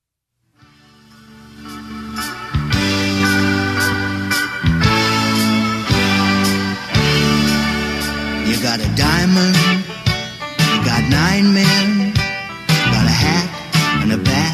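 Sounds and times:
upbeat instrumental baseball stadium song played going into the seventh inning: 0.6 - 14.5.

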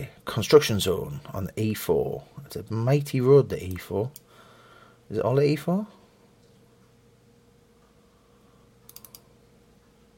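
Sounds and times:
speech: 0.0 - 4.2, 5.1 - 6.0
low steady hum: 0.0 - 10.1
soft crisp clicking on a computer: 8.8 - 9.3.

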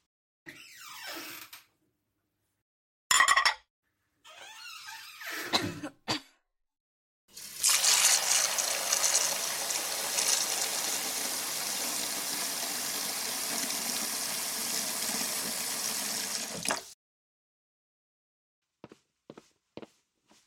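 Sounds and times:
throaty cough-like sounds: 5.4 - 6.4
running water being collected for washing someone: 7.3 - 17.0.

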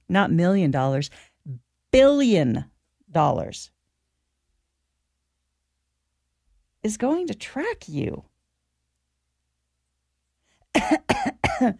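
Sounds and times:
speech: 0.1 - 3.8, 6.8 - 8.3, 10.8 - 11.7
fake coughs: 10.7 - 11.7.

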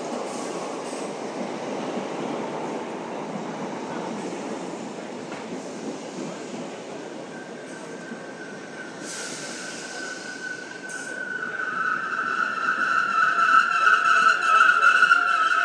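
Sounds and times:
train rumbling as it pulls into a station: 0.0 - 15.6
high metallic train brake squeal: 7.5 - 15.6.

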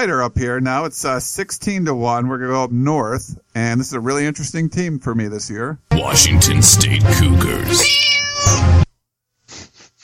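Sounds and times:
speech: 0.0 - 8.8
cat meow sound effect: 7.6 - 8.9.

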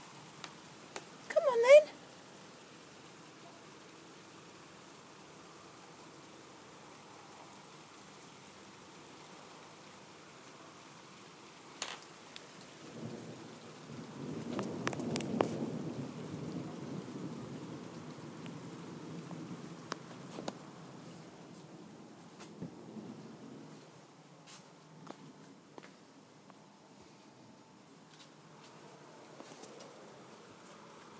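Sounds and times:
steady rain in a thunderstorm: 0.0 - 31.1
distant thunder rumbling: 12.5 - 23.8.

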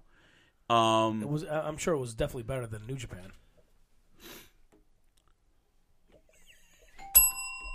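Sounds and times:
speech: 0.7 - 3.4
breathy sniff: 4.2 - 4.6
doorbell chime: 7.0 - 7.7.

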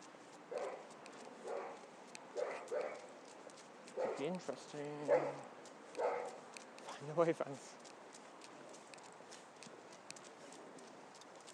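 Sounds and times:
dogs barking: 0.5 - 3.1, 3.9 - 4.4, 5.0 - 6.4
speech: 4.2 - 5.5, 7.0 - 7.8.

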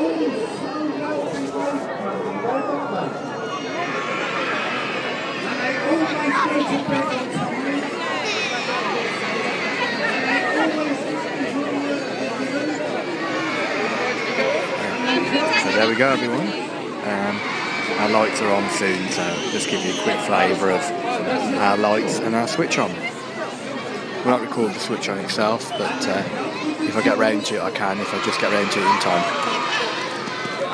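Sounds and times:
babble of a large crowd in a town square at a Christmas lights switch-on: 0.0 - 30.7
speech: 16.0 - 16.6, 17.4 - 23.1, 24.2 - 29.7.

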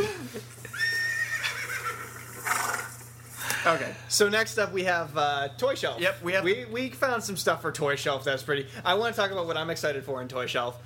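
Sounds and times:
horse whinnying with a long quavering neigh: 0.7 - 3.0
horse snorting breaths: 1.3 - 3.0
speech: 3.6 - 10.8.

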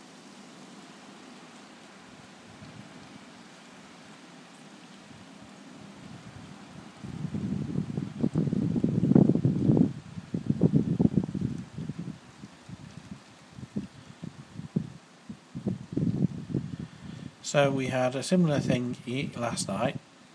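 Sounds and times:
gusty wind buffeting the microphone: 2.4 - 3.1, 5.1 - 17.4
speech: 17.5 - 20.0.

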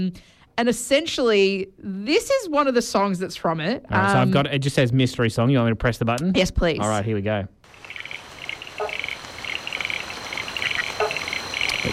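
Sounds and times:
speech: 0.0 - 7.6
chorus of Australian frog species calling: 7.7 - 11.9.

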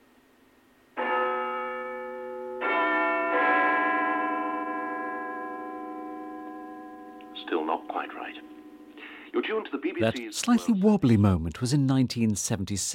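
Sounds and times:
great clock tower bell at Westminster chiming: 1.0 - 9.2
speech: 7.8 - 8.6, 9.3 - 12.9.

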